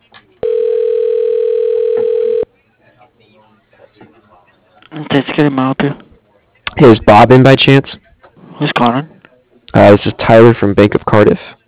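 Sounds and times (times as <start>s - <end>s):
telephone dial tone: 0.4s - 2.5s
speech: 5.4s - 6.0s, 6.8s - 8.0s, 8.6s - 9.2s, 9.8s - 11.6s.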